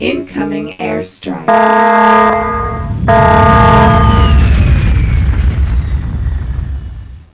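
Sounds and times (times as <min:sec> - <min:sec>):
airstrike explosions: 0:01.6 - 0:07.3.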